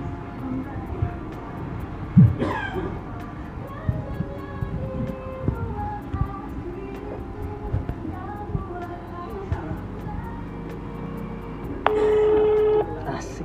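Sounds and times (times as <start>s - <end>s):
steady noise: 0.0s - 13.4s
steady phone ringback tone: 11.9s - 13.0s.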